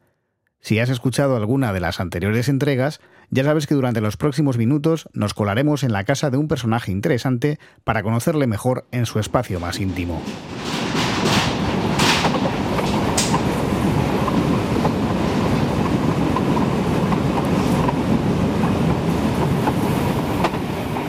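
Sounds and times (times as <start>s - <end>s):
speech: 0.6s - 11.0s
train running on rails heard from on board: 9.2s - 21.0s.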